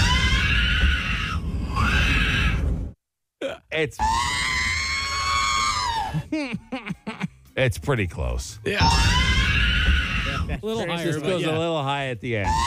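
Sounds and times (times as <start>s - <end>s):
baby screaming on a plane: 0.0s - 2.7s, 4.0s - 6.2s, 8.8s - 10.6s, 12.4s - 12.6s
speech: 3.8s - 4.4s, 6.3s - 9.4s, 10.5s - 12.6s.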